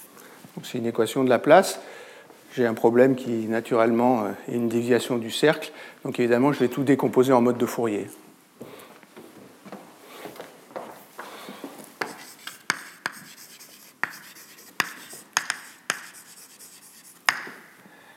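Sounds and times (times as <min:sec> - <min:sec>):
speech: 0:00.6 - 0:02.0, 0:02.6 - 0:08.2
scratchy strokes of an equation written by hand: 0:12.0 - 0:17.4.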